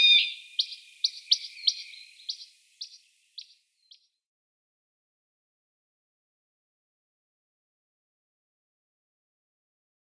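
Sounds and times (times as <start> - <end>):
western rock nuthatch sharp high call notes: 0.0 - 2.0.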